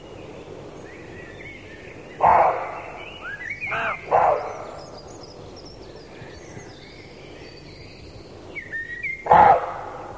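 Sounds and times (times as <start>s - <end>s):
bird's thin rising chirps: 0.0s - 10.1s
male roe deer barking hoarsely: 2.2s - 5.0s, 9.1s - 10.1s.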